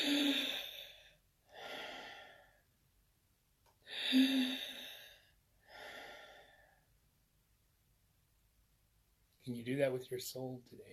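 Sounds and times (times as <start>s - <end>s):
slow deep breaths with noisy inhale and sighing exhale: 0.0s - 2.8s, 3.9s - 7.0s
speech: 9.5s - 10.9s.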